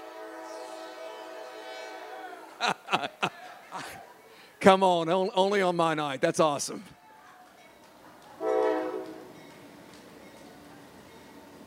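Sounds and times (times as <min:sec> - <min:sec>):
freight train horn: 0:00.0 - 0:02.5, 0:08.4 - 0:09.4
freight train passing: 0:00.0 - 0:03.3, 0:07.5 - 0:11.6
laughter: 0:02.4 - 0:04.3
speech: 0:02.6 - 0:03.2, 0:04.6 - 0:07.0.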